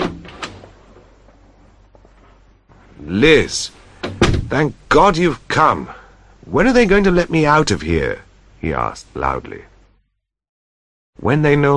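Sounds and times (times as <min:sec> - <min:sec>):
hospital room door opening: 0:00.0 - 0:01.4, 0:04.0 - 0:04.7
speech: 0:03.1 - 0:03.8, 0:04.5 - 0:09.7, 0:11.2 - 0:11.7.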